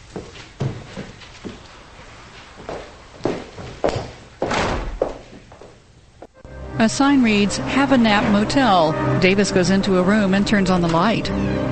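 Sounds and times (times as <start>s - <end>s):
footsteps of a person climbing stairs: 0.0s - 1.8s, 2.4s - 5.8s
speech: 6.8s - 11.7s.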